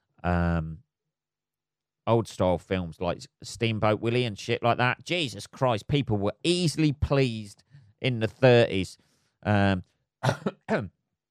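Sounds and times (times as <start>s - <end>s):
speech: 0.2s - 0.7s, 2.1s - 11.0s
rough coughs: 10.2s - 10.9s
voiced throat sound: 10.2s - 10.9s.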